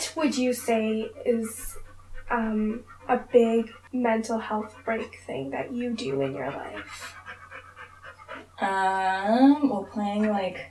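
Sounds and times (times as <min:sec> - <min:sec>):
puppy panting: 0:00.0 - 0:09.0
speech: 0:00.2 - 0:07.2, 0:08.6 - 0:10.6.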